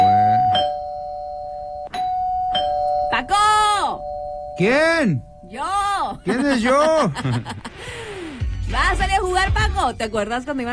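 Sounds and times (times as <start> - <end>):
electronic doorbell ringing: 0.0 - 6.0
speech: 4.6 - 7.7, 8.7 - 10.7
laughter: 6.2 - 7.9.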